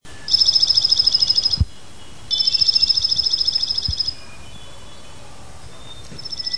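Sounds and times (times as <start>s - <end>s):
Dark-eyed Junco calling: 0.3s - 6.5s.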